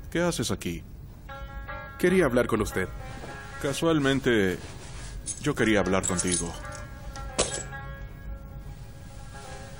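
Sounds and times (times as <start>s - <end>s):
quiet steady hum: 0.0s - 9.7s
speech: 0.1s - 0.9s, 2.0s - 4.8s, 5.4s - 6.7s
office keys jingling as they are handed over: 5.2s - 7.8s.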